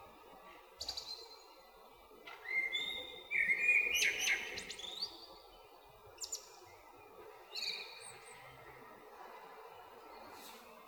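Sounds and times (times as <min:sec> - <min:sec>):
Eurasian blackbird singing mellow whistled phrases: 0:02.4 - 0:05.2.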